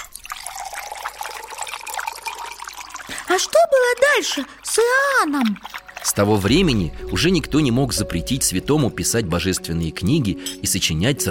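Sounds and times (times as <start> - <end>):
water pouring into a container: 0.0 - 9.2
speech: 3.3 - 11.2.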